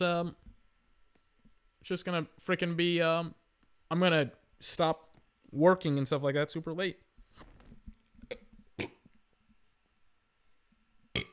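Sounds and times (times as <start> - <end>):
speech: 0.0 - 0.4, 1.8 - 7.0
person burping after eating a lot of food: 8.2 - 9.1, 11.1 - 11.3.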